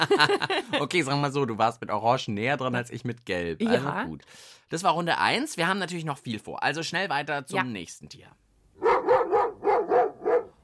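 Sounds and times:
laughter: 0.0s - 0.9s
speech: 0.0s - 8.4s
dog barking: 8.8s - 10.6s.

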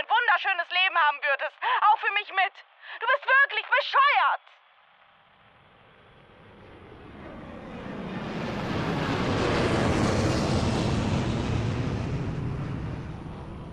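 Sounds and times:
speech: 0.4s - 4.6s
aircraft engine roaring: 5.4s - 13.7s.

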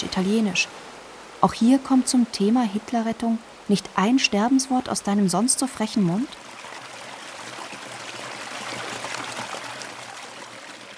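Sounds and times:
speech: 0.0s - 0.8s, 1.4s - 6.5s
water pouring from a village fountain into a basin: 6.4s - 10.9s.

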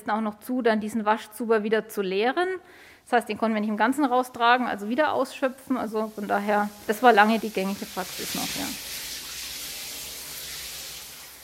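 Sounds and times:
speech: 0.0s - 9.0s
water gushing from a tap: 4.8s - 11.4s.

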